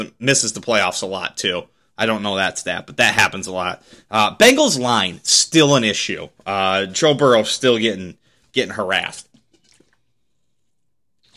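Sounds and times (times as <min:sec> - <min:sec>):
speech: 0:00.0 - 0:09.3
person drinking water with wet sips and swallows: 0:09.5 - 0:11.3.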